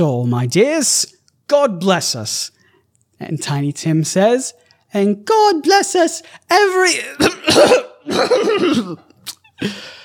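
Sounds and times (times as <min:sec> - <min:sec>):
speech: 0:00.0 - 0:02.6, 0:03.2 - 0:10.0
person coughing from being terribly sick: 0:07.2 - 0:09.8.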